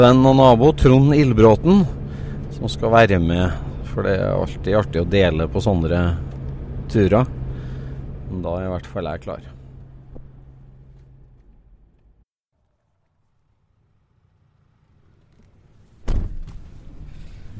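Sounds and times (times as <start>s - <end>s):
speech: 0.0s - 2.0s, 2.6s - 6.3s, 6.9s - 7.4s, 8.3s - 9.5s
steady low outdoor rumble: 0.0s - 12.2s, 12.9s - 17.5s
car door slamming shut as someone gets into a heated car: 16.0s - 16.8s.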